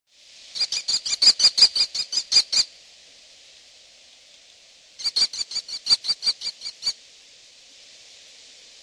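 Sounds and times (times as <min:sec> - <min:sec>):
American kestrel: 0:00.6 - 0:02.7, 0:05.0 - 0:07.0.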